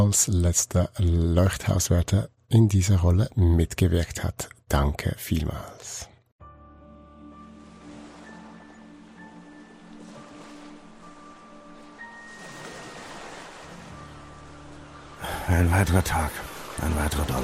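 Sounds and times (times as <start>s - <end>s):
speech: 0.0s - 6.1s, 15.5s - 17.4s
ocean waves: 7.3s - 17.4s.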